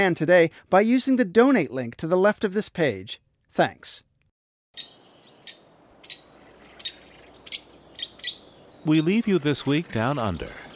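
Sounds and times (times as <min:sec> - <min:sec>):
speech: 0:00.0 - 0:04.1, 0:04.7 - 0:05.0, 0:08.8 - 0:10.6
red-rumped parakeet calls in Southeast Australia: 0:04.8 - 0:08.9.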